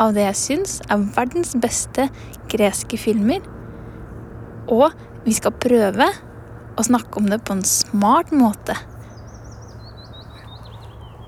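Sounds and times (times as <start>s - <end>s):
speech: 0.0s - 3.6s, 4.7s - 8.9s
birds chirping outdoors: 0.0s - 11.2s
steady low rumble: 0.0s - 11.2s.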